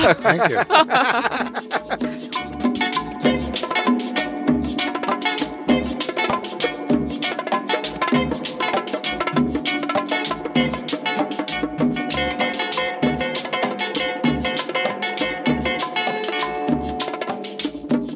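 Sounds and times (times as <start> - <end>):
laughter: 0.0 - 2.3
speech: 0.0 - 2.5
bright tinny electric guitar drenched in reverb: 0.0 - 17.6
upbeat chicha cumbia track with driving percussion groove: 0.0 - 18.1.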